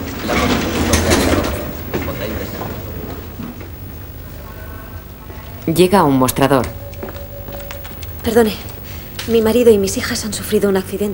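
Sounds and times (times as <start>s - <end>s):
sliding door in a hospital corridor opening with mechanical whoosh: 0.0s - 3.7s
steady indoor room noise: 0.0s - 11.1s
indistinct voices murmuring: 1.0s - 11.1s
speech: 5.7s - 6.8s, 8.2s - 8.7s, 9.3s - 11.1s
woman walking: 6.6s - 9.2s.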